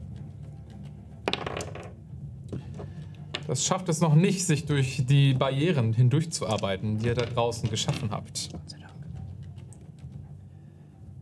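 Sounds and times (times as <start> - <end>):
dice rolled across a hard tabletop in a tabletop role-playing game: 1.2 - 2.0, 2.6 - 3.5, 6.4 - 8.6
speech: 3.5 - 8.9.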